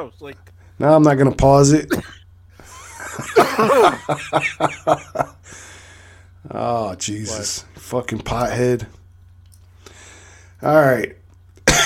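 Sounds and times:
speech: 0.0 - 2.2, 3.2 - 5.7, 6.4 - 9.0, 10.6 - 11.2
harsh raspy coughing fit: 1.9 - 2.2, 3.3 - 4.1, 11.7 - 11.8
laughter: 2.6 - 5.4.

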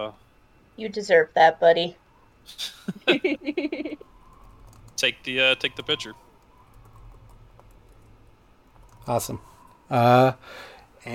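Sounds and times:
speech: 0.0 - 0.2, 0.8 - 4.0, 5.0 - 6.2, 9.0 - 11.1
low hum: 0.0 - 11.1
laughter: 2.6 - 4.0
typing on a computer keyboard: 4.2 - 5.1, 5.7 - 8.1, 8.7 - 9.1.

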